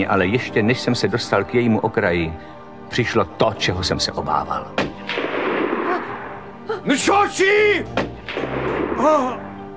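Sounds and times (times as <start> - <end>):
speech: 0.0 - 5.3, 6.8 - 9.5
rifle gunshots: 4.9 - 6.4, 8.0 - 9.2.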